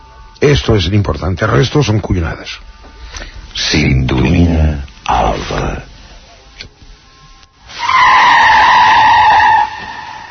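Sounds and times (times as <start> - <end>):
speech: 0.4 - 5.9
car tires skidding under hard braking: 7.7 - 10.2.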